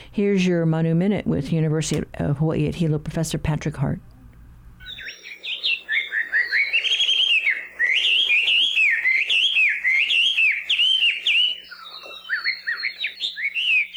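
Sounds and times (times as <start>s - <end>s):
speech: 0.2s - 4.1s
melodious laughing thrush singing: 4.8s - 13.9s.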